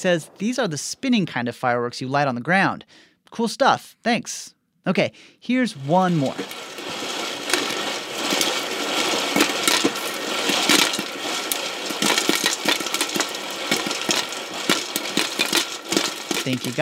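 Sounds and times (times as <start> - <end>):
speech: 0.0 - 6.7, 16.4 - 16.8
kernels popping and rattling inside a spinning stovetop Whirly Pop popcorn maker: 5.7 - 16.8.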